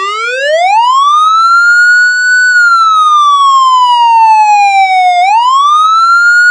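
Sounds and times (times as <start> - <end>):
siren wailing: 0.0 - 6.4.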